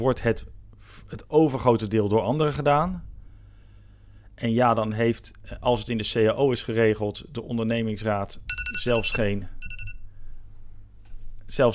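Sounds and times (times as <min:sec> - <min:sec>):
speech: 0:00.0 - 0:03.1, 0:04.4 - 0:09.6, 0:11.5 - 0:11.7
low hum: 0:00.0 - 0:11.7
phone ringing with bright electronic beeps: 0:08.5 - 0:10.0.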